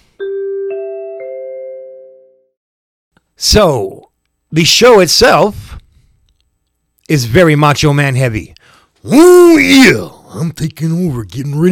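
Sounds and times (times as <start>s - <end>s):
three-note broadcast chime: 0.2s - 2.5s
speech: 3.4s - 5.8s, 7.1s - 11.6s.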